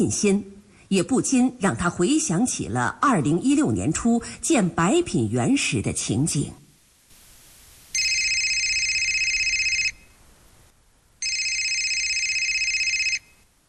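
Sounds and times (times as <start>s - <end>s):
speech: 0.0s - 6.6s
telephone ringing in long electronic bursts: 7.9s - 10.2s, 11.2s - 13.4s.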